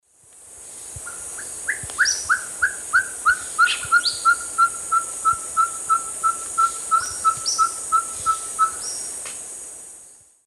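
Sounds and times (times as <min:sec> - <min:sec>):
Glaucidium brasilianum song in South American Eastern Lowlands: 0:01.0 - 0:09.2.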